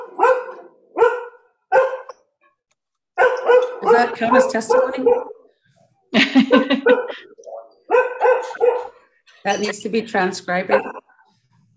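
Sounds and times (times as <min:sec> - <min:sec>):
cattle dog barking: 0:00.0 - 0:02.2, 0:03.2 - 0:05.5, 0:06.8 - 0:09.0, 0:10.7 - 0:11.1
speech: 0:04.0 - 0:05.4, 0:06.1 - 0:07.4, 0:09.4 - 0:10.9
laughter: 0:06.1 - 0:07.5.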